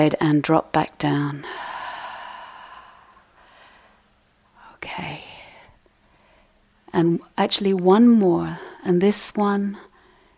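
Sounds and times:
speech: 0.0 - 1.6, 6.9 - 9.9
deliberate deep breath: 1.4 - 4.1, 5.3 - 6.6, 9.9 - 10.3.

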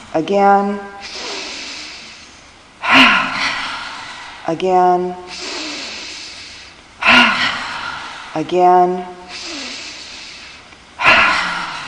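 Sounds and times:
quiet hiss: 0.0 - 11.8
speech: 0.2 - 1.0, 4.5 - 5.4, 8.4 - 9.2
rush of breath during a meditative-movement breathing exercise: 1.0 - 4.5, 5.3 - 8.4, 9.3 - 11.8.

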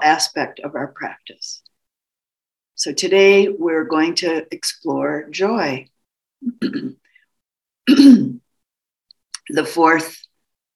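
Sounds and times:
speech: 0.0 - 1.7, 2.8 - 7.0, 7.9 - 8.4, 9.5 - 10.3
person clearing throat: 6.4 - 7.0, 7.9 - 8.4.

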